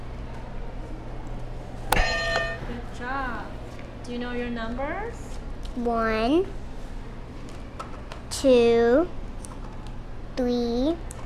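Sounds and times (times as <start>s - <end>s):
steady low hum: 0.0s - 11.2s
sustained electronic tone of a toy buzzer: 1.9s - 3.1s
speech: 3.0s - 6.6s, 8.4s - 9.2s, 10.4s - 11.2s.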